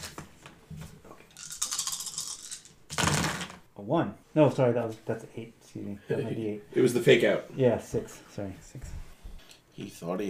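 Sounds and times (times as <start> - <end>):
dice rattling and tumbling across a tabletop: 1.4 - 3.6
speech: 3.8 - 9.0, 9.8 - 10.2.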